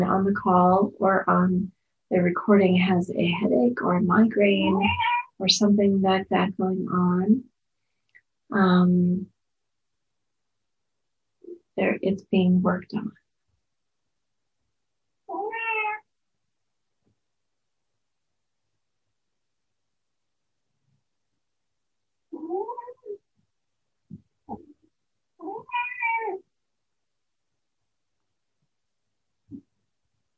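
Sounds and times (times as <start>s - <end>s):
speech: 0.0s - 7.5s, 8.5s - 9.3s, 11.8s - 13.2s
cat meowing: 4.7s - 5.4s, 15.3s - 16.1s, 22.3s - 23.2s, 25.4s - 26.4s.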